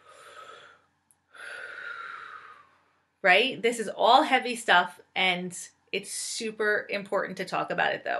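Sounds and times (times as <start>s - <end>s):
person taking a deep breath: 0.0s - 2.9s
speech: 3.2s - 8.1s.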